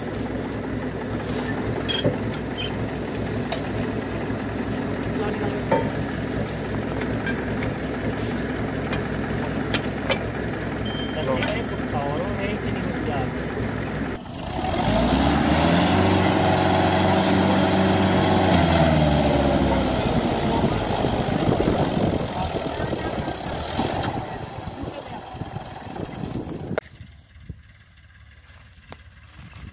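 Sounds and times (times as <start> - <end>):
tractor engine chugging under load: 0.0 - 29.7.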